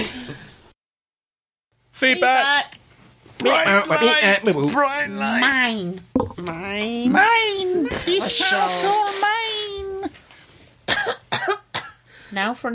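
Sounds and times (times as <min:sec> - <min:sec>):
speech: 0:02.0 - 0:02.8, 0:03.4 - 0:09.2, 0:12.3 - 0:12.7
high strained vocal sounds: 0:03.5 - 0:10.1
sharp harsh coughs: 0:10.9 - 0:12.1.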